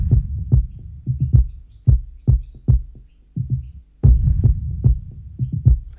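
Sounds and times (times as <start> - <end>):
deep booming kick drum hits with reverb and delay: 0.0 - 2.9, 4.0 - 5.1.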